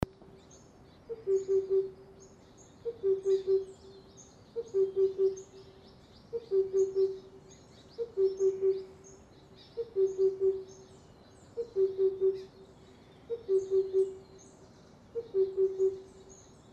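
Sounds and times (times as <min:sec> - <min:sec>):
Himalayan cuckoo Cuculus saturatus calling: 0:01.1 - 0:02.0, 0:02.8 - 0:03.8, 0:04.6 - 0:05.5, 0:06.3 - 0:07.3, 0:08.0 - 0:09.0, 0:09.8 - 0:10.8, 0:11.6 - 0:12.6, 0:13.3 - 0:14.3, 0:15.2 - 0:16.2.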